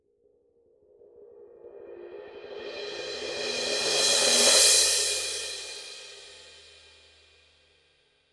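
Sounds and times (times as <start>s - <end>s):
Paiste Signature 16-inch mellow crash cymbal roll: 2.5s - 6.8s.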